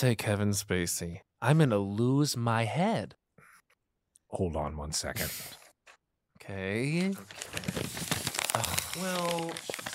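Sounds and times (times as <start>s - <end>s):
speech: 0.0s - 3.2s, 4.3s - 5.6s, 6.4s - 8.0s, 8.6s - 9.9s
piece of paper being crumpled: 7.1s - 9.9s.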